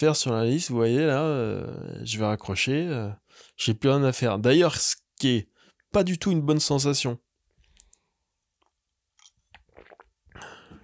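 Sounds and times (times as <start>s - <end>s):
speech: 0.0s - 7.3s
wet mouth clicks and slurps from sipping water: 7.6s - 8.0s, 8.6s - 10.8s
person swallowing water: 9.2s - 10.8s.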